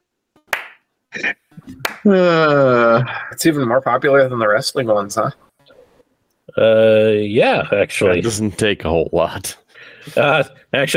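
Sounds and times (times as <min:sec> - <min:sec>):
slow deliberate hand claps: 0:00.5 - 0:00.9, 0:01.7 - 0:02.1
speech: 0:02.0 - 0:05.5, 0:06.6 - 0:10.9.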